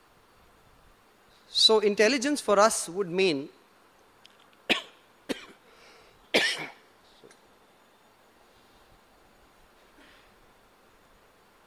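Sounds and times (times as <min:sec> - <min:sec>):
speech: 0:01.5 - 0:03.6
person coughing sharply: 0:04.7 - 0:05.6, 0:06.3 - 0:06.8.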